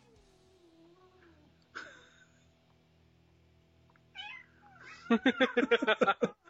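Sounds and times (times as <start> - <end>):
cats fighting and yowling: 4.1 - 5.6
laughter: 4.8 - 6.4.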